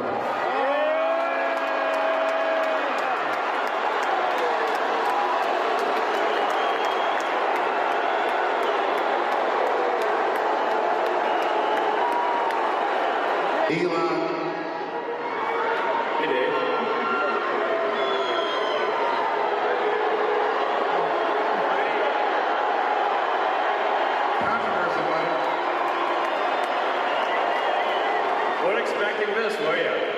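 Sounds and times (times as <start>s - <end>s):
large crowd booing at a live event: 0.0s - 30.1s
whistles: 6.1s - 7.4s, 17.9s - 19.1s, 26.6s - 28.6s.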